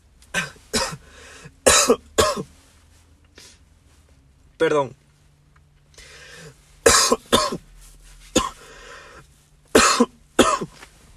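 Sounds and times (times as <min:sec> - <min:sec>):
faint hum: 0:00.0 - 0:11.1
person coughing: 0:00.3 - 0:02.5, 0:06.8 - 0:07.6, 0:08.3 - 0:08.8, 0:09.7 - 0:10.8
speech: 0:04.6 - 0:05.0.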